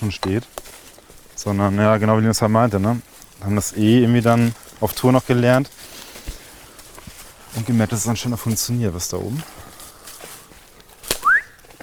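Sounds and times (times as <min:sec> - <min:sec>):
speech: 0:00.0 - 0:00.7, 0:01.4 - 0:06.0, 0:07.6 - 0:09.7
person whistling as a signal for a mushroom find: 0:11.2 - 0:11.6.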